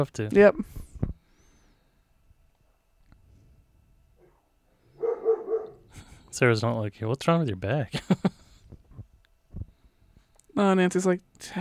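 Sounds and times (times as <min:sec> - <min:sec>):
speech: 0:00.0 - 0:00.9, 0:06.3 - 0:08.4, 0:10.6 - 0:11.6
dog barking: 0:05.0 - 0:05.8.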